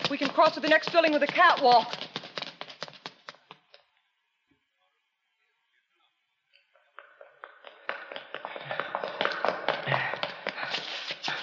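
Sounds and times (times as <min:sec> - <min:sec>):
several people's footsteps running up a staircase: 0:00.0 - 0:03.7, 0:06.8 - 0:11.4
speech: 0:00.1 - 0:02.1.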